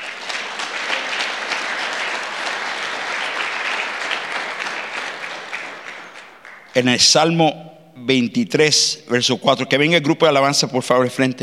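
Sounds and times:
crowd applauding: 0.0s - 6.8s
speech: 6.8s - 11.4s.

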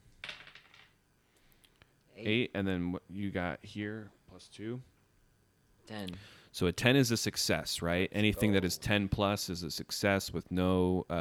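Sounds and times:
two six-sided dice rolled for a tabletop game: 0.2s - 1.0s
speech: 2.2s - 4.9s, 5.9s - 11.1s.

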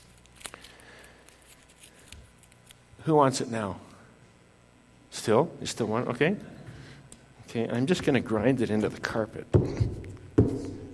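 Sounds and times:
paper banknote being crumpled by hand: 0.0s - 2.8s
speech: 3.0s - 3.9s, 5.2s - 6.6s, 7.5s - 10.0s.

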